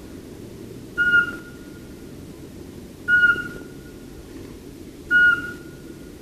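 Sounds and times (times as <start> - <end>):
constant low hum: 0.0 - 6.2
Eurasian Pygmy Owl flat whistles: 1.0 - 1.6, 3.1 - 3.7, 5.1 - 5.8.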